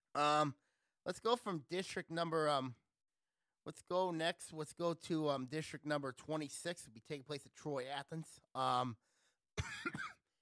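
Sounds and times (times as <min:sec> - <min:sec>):
speech: 0:00.2 - 0:02.8, 0:03.6 - 0:10.2
short throaty cough: 0:09.6 - 0:10.3.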